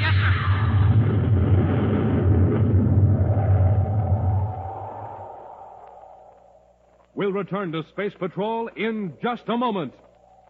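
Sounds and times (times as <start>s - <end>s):
spaceship flying in low with a deep rumbling roar: 0.4s - 6.4s
speech: 7.3s - 10.1s.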